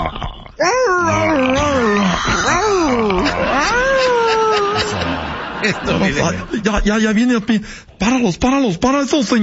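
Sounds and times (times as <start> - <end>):
person imitating a dog yelping in pain: 0.6 - 5.0
laughter: 1.8 - 6.9
speech: 5.7 - 9.4.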